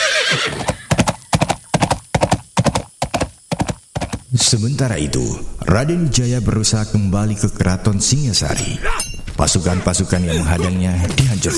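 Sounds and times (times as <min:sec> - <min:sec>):
horse giving a short shrill whinny: 0:00.0 - 0:01.2
horse hooves galloping as it is mounted and spurred to run: 0:00.0 - 0:04.3
speech: 0:04.4 - 0:11.5.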